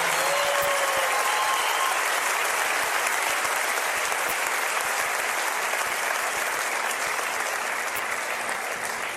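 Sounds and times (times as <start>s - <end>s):
faint whistle or cheer: 0.0s - 2.1s
audience applause: 0.0s - 9.1s.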